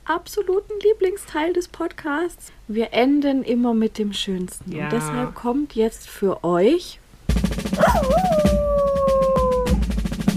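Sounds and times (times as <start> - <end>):
speech: 0.1 - 8.3
constant rhythmic music bed: 7.3 - 10.3
dog howling: 7.8 - 9.8.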